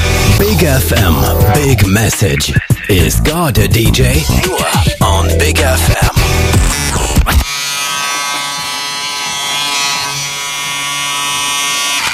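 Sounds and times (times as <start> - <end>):
speech: 0.6 - 6.1, 7.3 - 7.5
electric shaver buzzing: 6.1 - 12.1.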